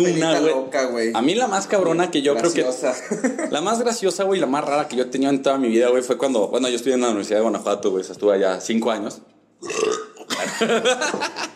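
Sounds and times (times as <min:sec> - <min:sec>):
speech: 0:00.0 - 0:09.8, 0:10.6 - 0:11.5
laughter: 0:02.9 - 0:03.6, 0:10.3 - 0:11.5
person burping: 0:09.6 - 0:10.5.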